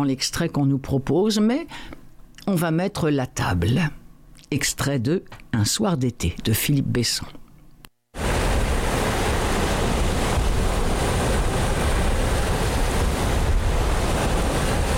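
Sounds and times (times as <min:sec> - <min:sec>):
speech: 0:00.0 - 0:07.4
waves washing against a ferry hull: 0:08.2 - 0:14.9
wind rushing past: 0:08.2 - 0:14.9.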